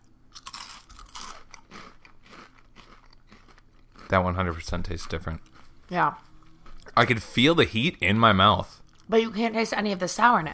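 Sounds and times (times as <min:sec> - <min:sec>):
crunching of Flaming Hot Cheetos being chewed: 0:00.3 - 0:07.2
speech: 0:04.1 - 0:06.3, 0:07.0 - 0:10.5.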